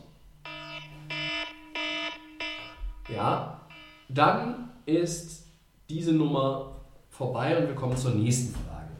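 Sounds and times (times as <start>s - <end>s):
electronic alarm beeps with harmonically rich buzzing tone: 0.4s - 4.7s
speech: 3.1s - 8.8s.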